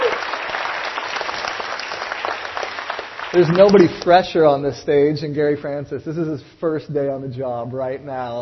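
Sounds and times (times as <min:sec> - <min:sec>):
audience applause at an on-stage introduction: 0:00.0 - 0:04.1
speech: 0:03.3 - 0:08.4.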